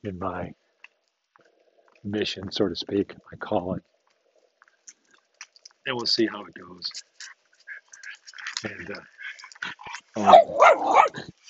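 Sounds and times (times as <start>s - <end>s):
speech: 0.0s - 0.6s, 2.0s - 3.9s, 5.8s - 7.3s, 8.6s - 11.4s
dog barking with a weakened limited growl after surgery: 10.2s - 11.3s.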